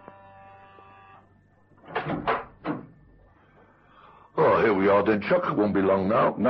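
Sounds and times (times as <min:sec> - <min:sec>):
electric doorbell buzz at a dentist's surgery: 0:00.0 - 0:01.8
door opened with rattling clunks: 0:01.8 - 0:02.9
speech: 0:04.8 - 0:06.4.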